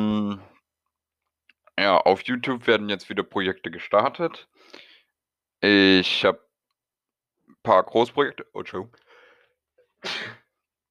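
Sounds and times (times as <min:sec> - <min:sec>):
speech: 0:01.8 - 0:04.8, 0:05.6 - 0:06.4, 0:07.6 - 0:09.0, 0:10.0 - 0:10.4
sneeze: 0:10.0 - 0:10.5.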